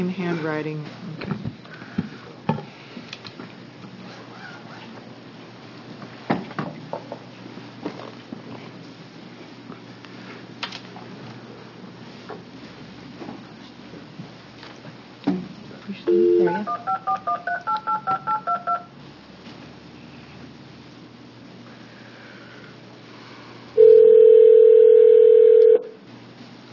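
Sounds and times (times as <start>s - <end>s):
speech: 0.1s - 1.4s
telephone ringing tone: 16.1s - 18.9s, 23.8s - 26.0s
touch-tone telephone dialing beeps: 16.1s - 18.9s.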